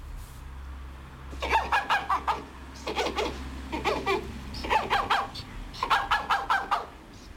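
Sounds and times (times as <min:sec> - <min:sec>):
European badger giving squeaky yelping chatter: 0:01.4 - 0:07.0.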